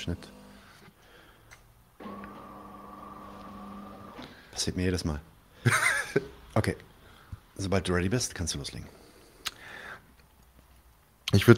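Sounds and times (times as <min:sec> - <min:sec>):
speech: 0:00.0 - 0:00.4, 0:04.6 - 0:06.9, 0:07.6 - 0:09.0, 0:11.3 - 0:11.5
coffee machine mechanical hum and whine: 0:00.0 - 0:00.8, 0:02.0 - 0:04.3
laughter: 0:05.6 - 0:06.4.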